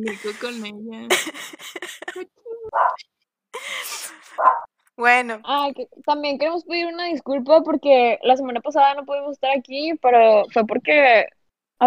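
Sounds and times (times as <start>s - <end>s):
laughter: 0.0s - 2.2s
speech: 0.0s - 11.8s
dog barking: 2.7s - 3.0s, 4.4s - 4.7s.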